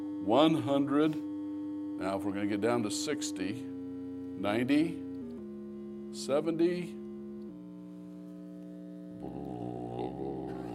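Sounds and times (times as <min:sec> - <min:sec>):
60 cycle electrical mains hum: 0:00.0 - 0:10.7
speech: 0:00.2 - 0:01.3, 0:02.0 - 0:03.8, 0:04.4 - 0:05.0, 0:06.1 - 0:07.0.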